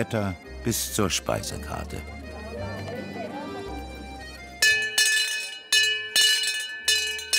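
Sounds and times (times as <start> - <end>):
speech: 0.0 - 2.2
faint murmuring voices: 1.6 - 4.6
town crier's hand bell ringing on the island of Föhr: 4.6 - 7.3.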